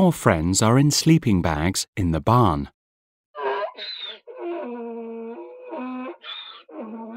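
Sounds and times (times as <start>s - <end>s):
speech: 0.0s - 2.8s
donkey braying: 3.4s - 7.1s.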